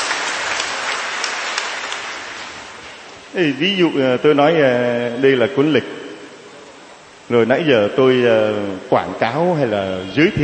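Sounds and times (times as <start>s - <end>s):
crowd applauding: 0.0s - 2.7s
speech: 3.3s - 6.0s, 7.3s - 10.4s.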